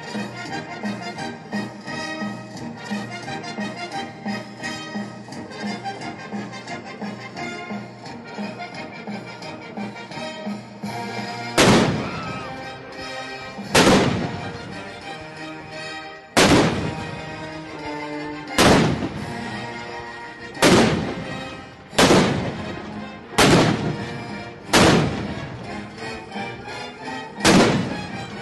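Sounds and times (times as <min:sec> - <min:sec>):
full orchestra playing an overture: 0:00.0 - 0:28.3
howitzer cannon blasts: 0:11.6 - 0:12.4, 0:13.6 - 0:14.8, 0:16.4 - 0:17.3, 0:18.5 - 0:19.5, 0:20.6 - 0:25.7, 0:27.4 - 0:28.3.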